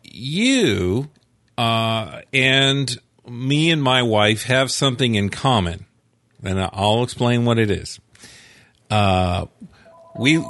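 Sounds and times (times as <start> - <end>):
speech: 0.2 - 8.3, 8.9 - 10.4
faint thin tone: 9.8 - 10.4
telephone electronic ring: 9.8 - 10.4.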